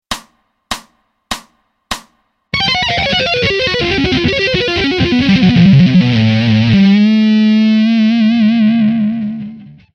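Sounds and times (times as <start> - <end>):
fast atonal tapping lick: 2.5 - 9.9.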